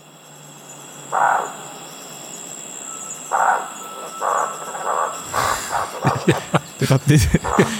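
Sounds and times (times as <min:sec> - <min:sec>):
faint steady hum: 0:00.0 - 0:07.7
speech: 0:01.1 - 0:01.6, 0:06.0 - 0:07.7
owl giving soft whistled hoots: 0:01.1 - 0:02.0, 0:02.8 - 0:07.7
laughter: 0:05.2 - 0:07.7.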